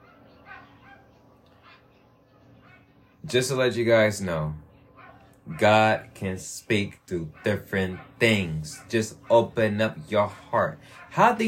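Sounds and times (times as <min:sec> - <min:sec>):
dog barking: 0:00.0 - 0:03.2, 0:04.9 - 0:06.0, 0:06.8 - 0:11.4
speech: 0:03.3 - 0:04.6, 0:05.5 - 0:11.4.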